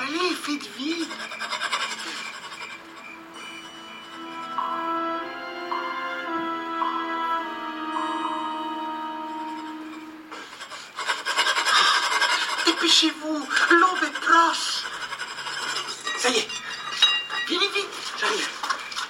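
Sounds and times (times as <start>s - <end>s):
metal file rasping on prison bars: 0.0s - 4.4s, 9.4s - 18.2s
sustained tonal drone: 0.0s - 19.0s
speech: 0.4s - 1.4s, 12.9s - 13.2s.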